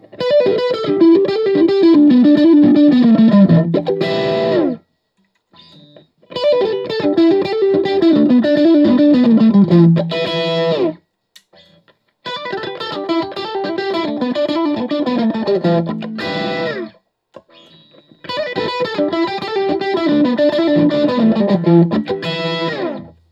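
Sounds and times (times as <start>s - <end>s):
1975 Guild M80 guitar solo through JCM800 amplifier: 0.0s - 4.8s, 5.6s - 23.2s.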